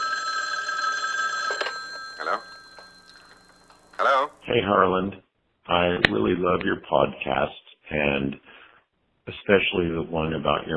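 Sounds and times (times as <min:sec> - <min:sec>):
telephone ringing with bright electronic tone: 0:00.0 - 0:04.5
speech: 0:02.2 - 0:02.5, 0:04.0 - 0:08.5, 0:09.3 - 0:10.7.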